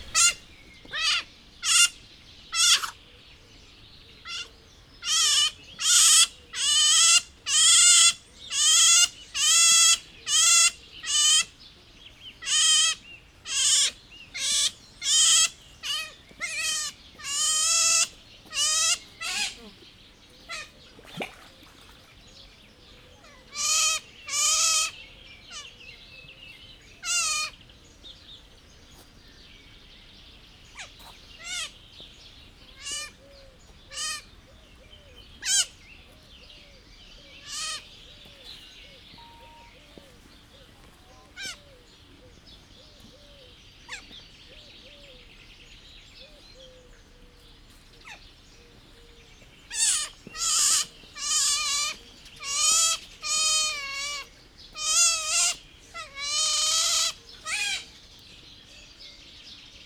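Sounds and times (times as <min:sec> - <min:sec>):
Asian small-clawed otter calls in a zoo: 0:00.0 - 0:03.0, 0:04.2 - 0:11.5, 0:12.4 - 0:19.8, 0:20.4 - 0:22.3, 0:23.2 - 0:25.8, 0:27.0 - 0:27.6, 0:30.7 - 0:31.8, 0:32.7 - 0:34.4, 0:35.4 - 0:35.8, 0:37.4 - 0:38.0, 0:38.8 - 0:39.9, 0:49.7 - 0:58.0.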